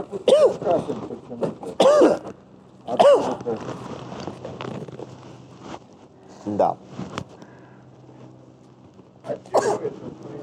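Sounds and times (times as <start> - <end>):
raspy phlegmy smoker's cough: 0.0 - 2.3, 2.9 - 3.4, 9.5 - 10.0
quiet hum: 0.0 - 10.4
speech: 0.1 - 1.7, 2.9 - 4.0, 6.5 - 7.0.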